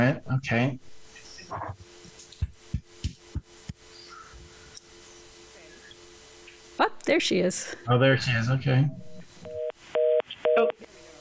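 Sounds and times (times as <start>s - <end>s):
speech: 0.0s - 1.8s, 6.8s - 9.1s
telephone dial tone beeping in a call: 9.5s - 10.8s.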